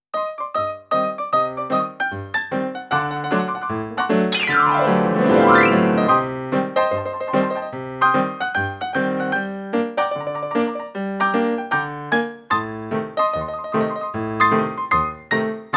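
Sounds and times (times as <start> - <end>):
ragtime piano: 0.1 - 15.7.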